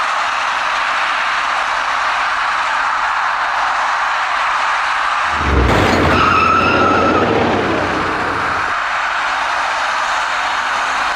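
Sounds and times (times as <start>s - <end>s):
traffic noise on a highway ramp bridge: 0.0s - 11.1s
screeching tone: 5.3s - 8.8s
two white cars colliding on a highway ramp bridge: 5.3s - 8.8s.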